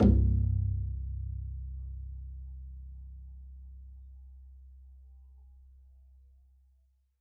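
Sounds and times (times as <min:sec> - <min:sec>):
double bass pizzicato C1 note: 0:00.0 - 0:04.2.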